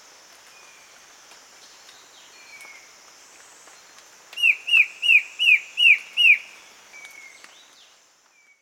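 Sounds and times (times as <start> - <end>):
male black-headed antbird whistled call: 4.4 - 7.4.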